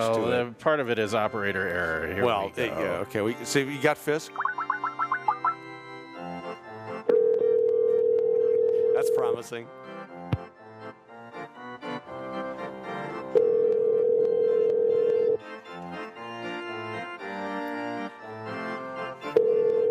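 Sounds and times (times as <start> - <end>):
speech: 0.0 - 4.6, 9.1 - 9.8
music: 0.0 - 19.8
electronic ringback tone of an outgoing phone call: 4.4 - 5.6, 7.1 - 9.2, 13.4 - 15.4, 19.4 - 19.8.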